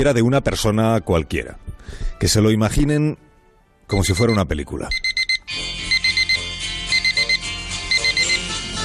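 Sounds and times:
speech: 0.0s - 3.2s, 3.9s - 5.6s
digital alarm clock beeping: 4.0s - 8.7s.

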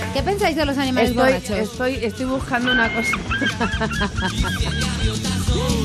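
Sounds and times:
speech: 0.2s - 5.8s
laughter: 1.1s - 5.8s
seagulls crying and squawking in a dense overlapping chorus: 2.0s - 5.6s.

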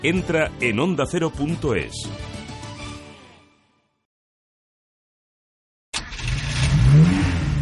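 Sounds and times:
speech: 0.0s - 2.4s
safety car engine revving: 6.0s - 7.5s.

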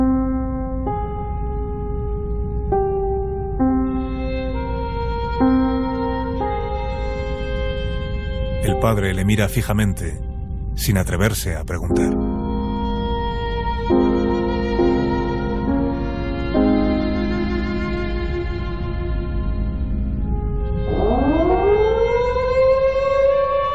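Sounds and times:
air raid sirens wailing: 0.0s - 10.8s, 11.9s - 23.7s
speech: 8.8s - 12.3s.

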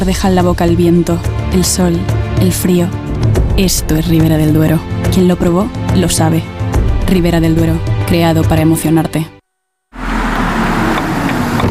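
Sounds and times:
speech: 0.0s - 9.4s
broadband road noise as the vehicle drives: 10.0s - 11.6s
car engine starting up and running as the vehicle drives: 10.0s - 11.6s.

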